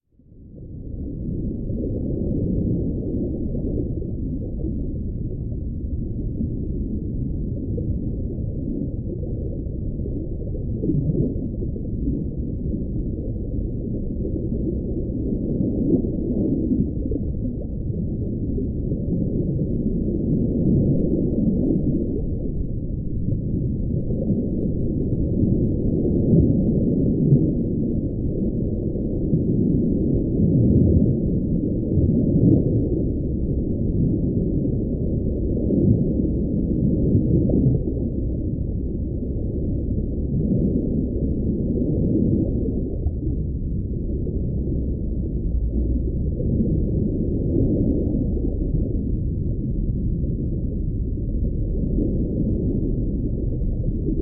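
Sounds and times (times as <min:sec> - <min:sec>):
deep sea underwater waves: 0:00.6 - 0:54.2.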